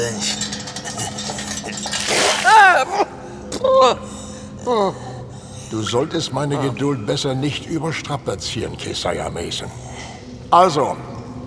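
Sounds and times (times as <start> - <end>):
speech: 0.0 - 0.4, 2.8 - 5.1, 5.7 - 9.9, 10.5 - 11.1
person sputtering gasps and strained cries: 1.0 - 5.2
heavy splash of water: 2.0 - 2.5.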